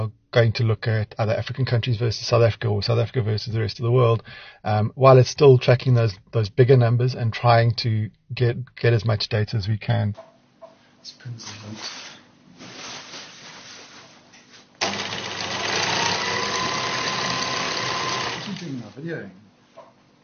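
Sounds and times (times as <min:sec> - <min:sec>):
speech: 0:00.0 - 0:10.3, 0:11.0 - 0:12.1, 0:19.0 - 0:19.4
sewing machine stitching large piece of green fabric into green-screen backdrop: 0:14.8 - 0:19.0.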